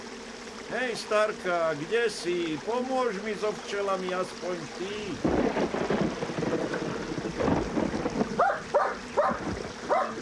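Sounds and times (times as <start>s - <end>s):
speech: 0.7s - 5.9s
dense rumbling noise: 4.8s - 10.2s
dog barking beside a stream: 8.4s - 10.2s.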